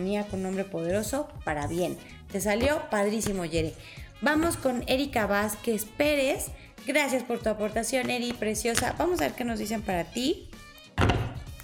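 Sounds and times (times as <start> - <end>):
speech: 0.0 - 11.1
cards thumping on a table: 11.0 - 11.5.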